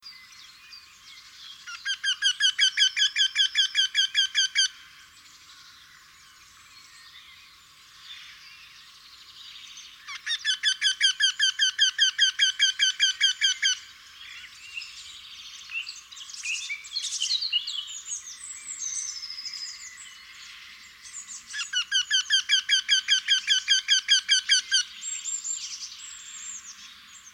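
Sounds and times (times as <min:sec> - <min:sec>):
wryneck calling in Landshut: 0:01.6 - 0:04.8, 0:10.0 - 0:14.6, 0:21.2 - 0:27.3.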